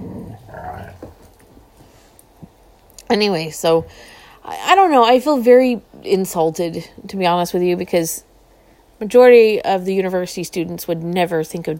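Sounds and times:
dog low rumbling chuckle-like growl: 0.0 - 1.3
speech: 3.1 - 8.3, 9.0 - 11.7.

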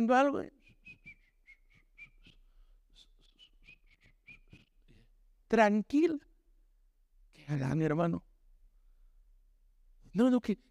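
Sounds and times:
speech: 0.0 - 0.6, 5.5 - 6.3, 7.5 - 8.3, 10.1 - 10.6
woman whistling a light choppy tune while doing a task: 0.6 - 4.8.

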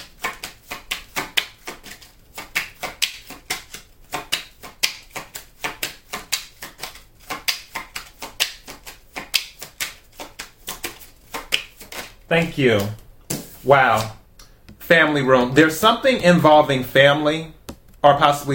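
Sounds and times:
tarot cards being shuffled by hand: 0.0 - 14.8
speech: 12.3 - 13.0, 13.6 - 14.2, 14.9 - 18.5.

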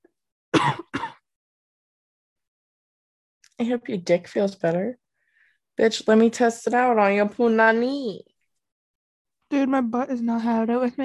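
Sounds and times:
person coughing harshly after smoking: 0.5 - 1.2
speech: 3.6 - 5.0, 5.8 - 8.3, 9.5 - 11.0.

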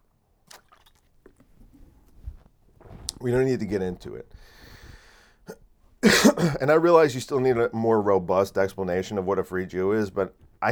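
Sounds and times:
sipping water: 0.0 - 10.7
swallowing: 0.4 - 6.6
speech: 3.2 - 4.6, 6.2 - 10.7.

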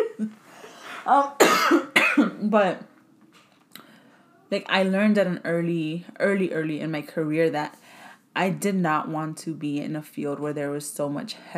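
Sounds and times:
speech: 0.2 - 0.4, 1.0 - 2.9, 4.5 - 7.8, 8.4 - 11.5
harsh cough: 1.4 - 2.4.

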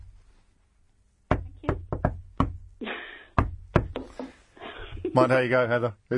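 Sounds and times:
sharp knocks on a door: 1.3 - 2.7, 3.4 - 4.3
speech: 5.2 - 6.1.

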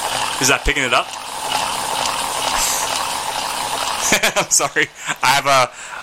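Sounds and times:
gyroscopic powerball wrist exerciser spinning: 0.0 - 4.4
speech: 0.4 - 1.2, 4.1 - 5.9
laughter: 4.0 - 5.4.

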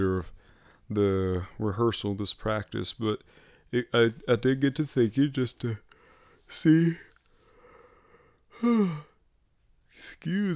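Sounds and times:
speech: 0.0 - 5.8, 6.5 - 7.1, 8.6 - 9.1, 10.0 - 10.5
person yawning: 8.5 - 9.2.

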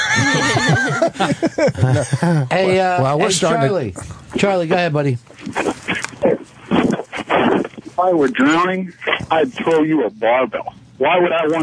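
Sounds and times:
horse whinnying loudly: 0.0 - 0.8
laughter: 0.0 - 3.5
speech: 0.2 - 6.5, 8.0 - 11.6.

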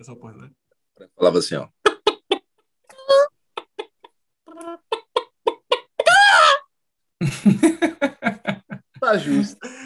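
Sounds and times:
speech: 0.0 - 1.8, 7.2 - 7.8, 9.1 - 9.7
person imitating a chicken with clucks and squawks: 1.8 - 6.7
laughter: 7.2 - 9.8.

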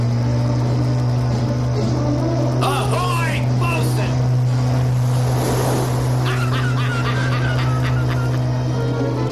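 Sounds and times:
sport fishing motorboat engine speeding past in a harbor: 0.0 - 9.3
laughter: 6.2 - 8.7.

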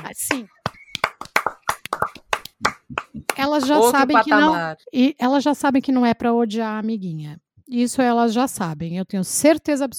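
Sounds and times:
hands clapping: 0.0 - 4.0
speech: 0.2 - 0.6, 3.5 - 9.9.

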